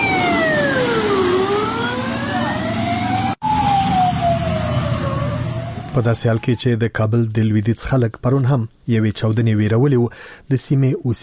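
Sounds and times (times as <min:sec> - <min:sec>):
ambulance sirens speeding past near a bus stop: 0:00.0 - 0:06.9
steady traffic rumble: 0:00.0 - 0:08.2
speech: 0:06.0 - 0:11.2.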